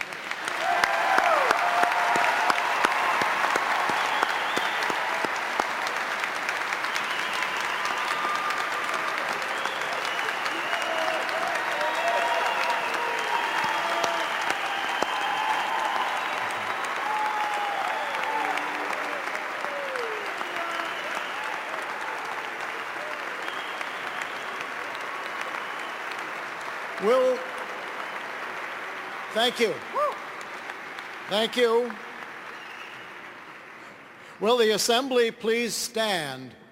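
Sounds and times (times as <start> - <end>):
large audience applauding graduates at a ceremony: 0.0 - 35.1
scattered cheers: 0.4 - 5.9, 6.7 - 26.4
speech: 27.1 - 27.4, 29.4 - 29.8, 31.3 - 32.0, 34.4 - 36.6.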